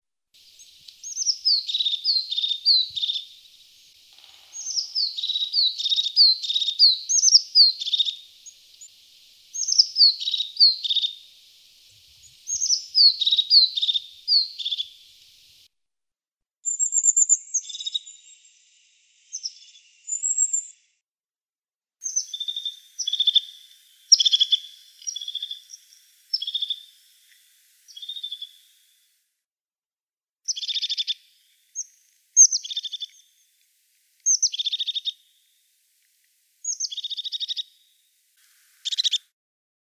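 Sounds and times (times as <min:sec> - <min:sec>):
Lophophanes cristatus calling: 0:00.4 - 0:15.6, 0:22.0 - 0:29.0, 0:30.5 - 0:39.3.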